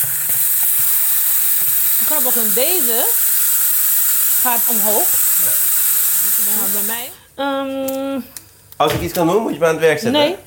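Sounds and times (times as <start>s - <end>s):
steam hissing out of a cooking pot's vent after the heat is turned off: 0.0s - 7.3s
speech: 2.0s - 3.3s, 4.4s - 10.4s.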